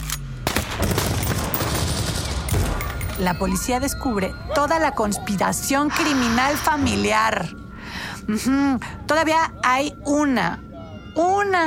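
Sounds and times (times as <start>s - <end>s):
gunfire outside a house in the early morning: 0.4s - 3.1s
speech: 3.2s - 7.6s, 8.2s - 10.6s, 11.2s - 11.6s.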